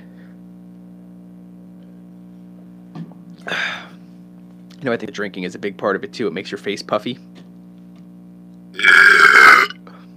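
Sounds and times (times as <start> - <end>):
faint low hum: 0.0 - 10.1
speech: 4.8 - 7.4
loud drawn-out raspy burp: 8.8 - 9.8.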